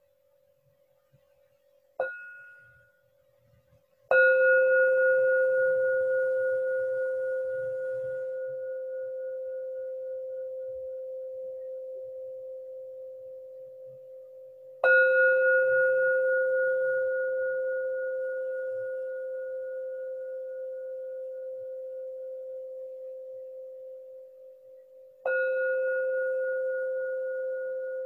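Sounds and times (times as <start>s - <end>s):
meditation bell strikes: 4.1s - 11.4s, 14.8s - 23.3s, 25.2s - 28.0s.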